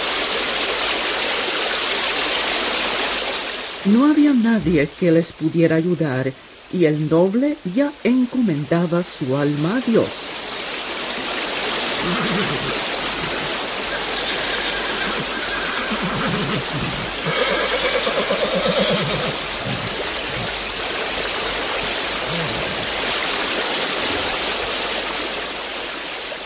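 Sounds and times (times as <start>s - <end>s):
rushing current of the Moldava river: 0.0s - 26.4s
speech: 3.8s - 10.3s, 12.0s - 12.9s
horse neighing and whinnying through churning water: 12.0s - 20.6s, 22.2s - 23.0s.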